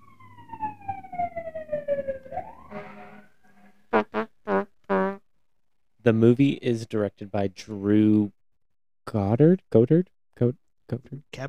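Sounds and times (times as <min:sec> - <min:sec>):
fire truck siren passing: 0:00.0 - 0:03.6
fire truck horn blasts: 0:02.6 - 0:05.2
speech: 0:06.0 - 0:08.4, 0:09.1 - 0:11.4.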